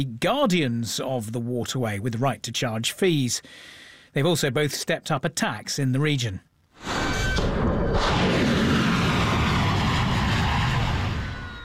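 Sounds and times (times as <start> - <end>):
speech: 0.0 - 8.5
explosions from overnight US military strikes: 6.8 - 11.6.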